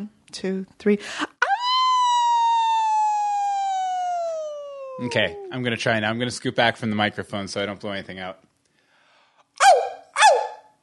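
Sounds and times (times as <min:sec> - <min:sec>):
speech: 0:00.0 - 0:01.3, 0:05.0 - 0:08.4
person howling like a dog in a howling contest: 0:01.5 - 0:05.6.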